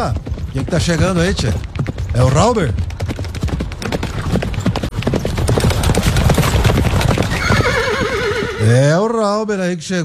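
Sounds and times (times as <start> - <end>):
speech: 0.0 - 2.9, 8.6 - 10.0
horse hooves clip-clopping: 0.0 - 8.9
horse whinnying: 6.0 - 9.0.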